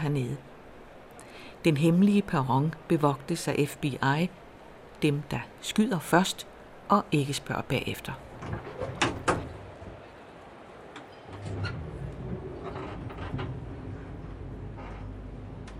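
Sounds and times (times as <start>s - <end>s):
speech: 0.0s - 0.6s, 1.6s - 4.4s, 5.0s - 9.1s
elevator sliding door rolling open with a low mechanical rumble and hum: 8.2s - 15.7s
elevator sliding door clunking: 8.3s - 10.0s, 10.9s - 15.7s.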